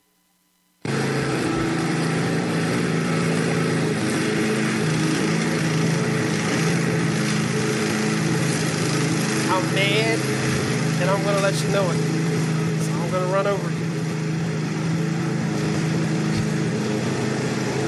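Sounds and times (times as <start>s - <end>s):
lawn mower engine running: 0.8s - 17.8s
speech: 11.2s - 12.1s, 13.3s - 13.7s.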